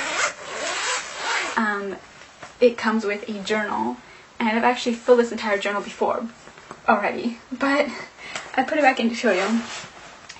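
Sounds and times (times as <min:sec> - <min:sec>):
zipper pulled open around a soft padded folder: 0:00.0 - 0:01.6, 0:09.3 - 0:09.9
speech: 0:01.6 - 0:09.9.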